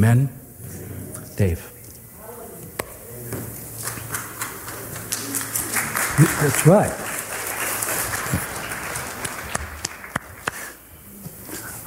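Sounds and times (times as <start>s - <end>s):
speech: 0.0s - 0.4s, 1.4s - 1.7s, 6.2s - 7.0s
spontaneous audience applause: 3.8s - 10.8s.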